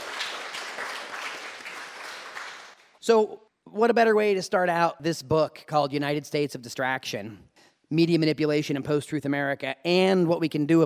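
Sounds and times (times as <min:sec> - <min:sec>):
audience applause at a bookstore event in San Francisco: 0:00.0 - 0:02.8
speech: 0:03.1 - 0:10.8.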